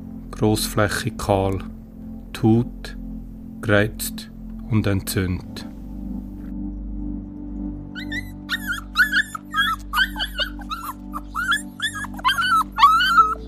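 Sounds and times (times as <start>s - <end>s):
speech: 0.3s - 1.8s, 2.4s - 3.0s, 3.6s - 5.7s
several neglected dogs whimpering and yipping: 8.0s - 13.4s.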